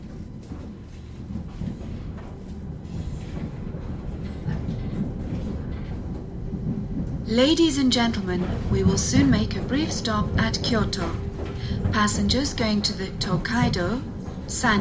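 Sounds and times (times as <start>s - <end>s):
railway train in motion rumbling, heard from inside a carriage: 0.0s - 14.7s
railway train wheels rattling on the rails: 0.0s - 14.7s
speech: 7.3s - 11.3s, 11.9s - 14.7s.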